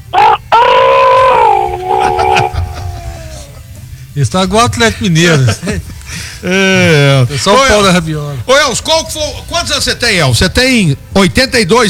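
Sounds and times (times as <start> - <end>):
rooster crowing: 0.0 - 3.8
faint noise: 0.0 - 11.8
laughter: 0.2 - 4.0, 4.9 - 7.2
speech: 4.2 - 11.8.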